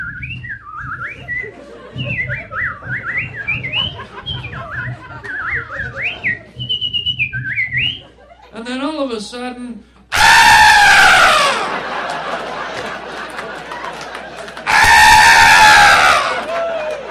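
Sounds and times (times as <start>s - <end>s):
person whistling an imitation of birds singing in a garden: 0.0s - 8.1s
laughter: 1.0s - 6.8s, 7.8s - 8.6s, 11.0s - 17.0s
speech: 2.0s - 2.6s, 8.6s - 9.9s.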